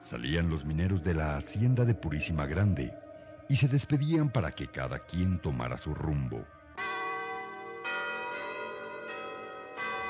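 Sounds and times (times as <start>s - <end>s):
speech: 0.1s - 6.6s
clock tower bell tolling: 6.8s - 10.0s.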